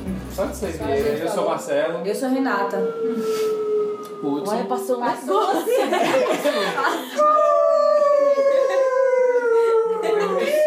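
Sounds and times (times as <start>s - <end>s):
speech: 0.4s - 7.7s
dog howling with a long downward-sliding howl: 2.5s - 5.1s, 7.2s - 10.6s
laughter: 5.3s - 10.6s.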